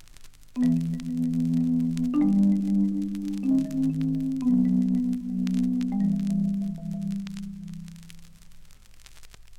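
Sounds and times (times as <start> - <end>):
marimba played in sustained rolled chords with mallets: 0.6 - 8.4.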